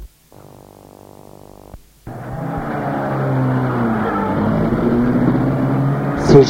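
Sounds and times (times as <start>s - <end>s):
car engine cranking, starting and revving as the car pulls away fast: 2.1s - 6.4s.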